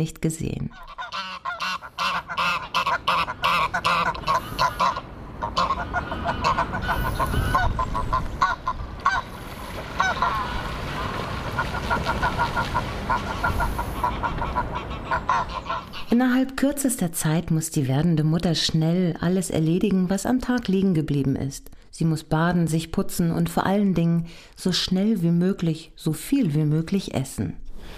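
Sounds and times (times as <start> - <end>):
speech: 0.0 - 1.2, 12.2 - 27.9
pair of geese honking in greeting: 0.7 - 16.2
faint watery background: 8.1 - 16.0.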